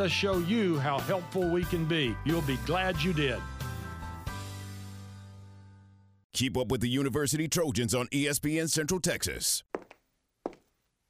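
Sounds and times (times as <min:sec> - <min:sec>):
speech: 0:00.0 - 0:03.6, 0:06.4 - 0:09.7
footsteps of someone walking in arch supports: 0:09.7 - 0:11.0.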